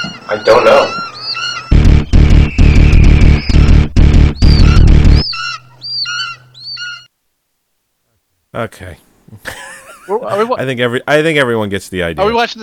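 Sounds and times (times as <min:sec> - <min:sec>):
attacking birds screeching in a film trailer: 0:00.0 - 0:07.1
speech: 0:00.3 - 0:01.0, 0:08.6 - 0:12.6
loud heavy pulsing bursts in a film trailer: 0:01.7 - 0:05.4.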